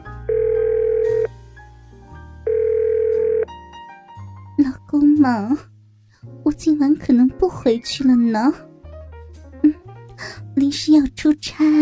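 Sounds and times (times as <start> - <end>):
mobile phone call ringing tone beeps: 0.3 - 1.3, 2.5 - 3.5
speech: 4.6 - 5.7, 6.6 - 8.7, 10.6 - 11.8.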